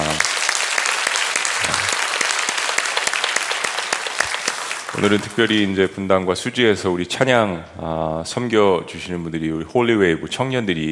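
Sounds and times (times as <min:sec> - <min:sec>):
crowd applauding: 0:00.0 - 0:05.8
speech: 0:05.0 - 0:10.9.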